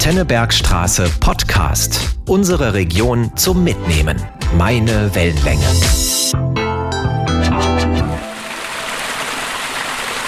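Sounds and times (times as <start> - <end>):
speech: 0.0 - 6.5
short musical jingle: 5.4 - 8.6
water pouring over the old sawmill weir on the Stadtbach stream: 8.2 - 10.2.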